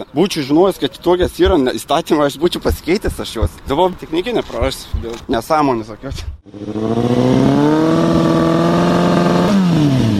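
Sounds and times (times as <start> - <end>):
speech: 0.0 - 7.7
motorcycle engine revving with silencer baffle removed from muffler: 6.4 - 10.1.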